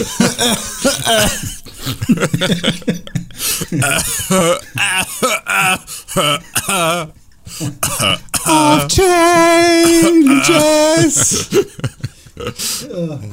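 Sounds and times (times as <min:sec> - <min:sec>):
person coughing and clearing throat: 0:00.0 - 0:02.4, 0:03.6 - 0:11.8
speech: 0:00.0 - 0:08.1, 0:10.4 - 0:11.8
laughter: 0:00.0 - 0:12.8
wavering half-sung vocal sounds: 0:08.0 - 0:11.5.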